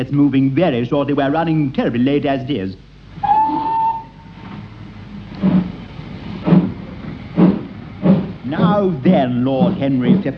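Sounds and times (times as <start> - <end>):
speech: 0.0 - 3.3, 8.8 - 10.3
constant rumbling hiss: 0.0 - 10.3
brief whistle tone: 3.2 - 4.3
train wheels clacking over track joints: 5.4 - 10.3.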